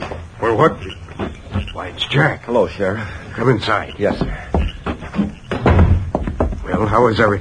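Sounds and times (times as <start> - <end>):
speech: 0.5 - 1.0, 1.8 - 4.5, 6.8 - 7.3
soft knocking on a wooden door: 4.2 - 6.9.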